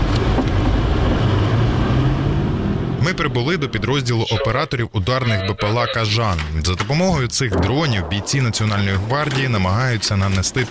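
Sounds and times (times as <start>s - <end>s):
armored car engine and road roar at high speed: 0.0s - 4.2s
speech: 3.1s - 10.7s.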